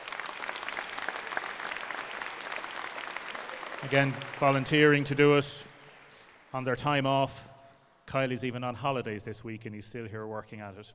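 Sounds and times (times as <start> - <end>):
audience applause: 0.0 - 6.5
speech: 3.8 - 5.7, 6.5 - 7.5, 8.1 - 10.9.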